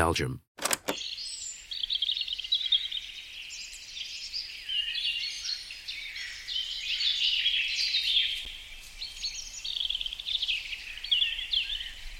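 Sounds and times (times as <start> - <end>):
speech: 0.0 - 0.6
forest chorus of birds chirping and trilling in the Blue Forest in Halle, Belgium: 0.9 - 12.1
leaves stirring in the wind in the Blue Forest in Halle, Belgium: 7.6 - 12.1.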